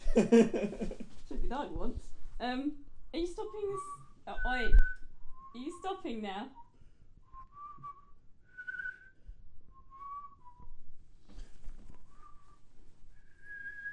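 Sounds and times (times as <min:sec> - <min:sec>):
laughter: 0:00.0 - 0:01.2
speech: 0:00.2 - 0:06.6
person whistling a tune: 0:03.6 - 0:05.6, 0:06.6 - 0:10.8, 0:13.2 - 0:13.9.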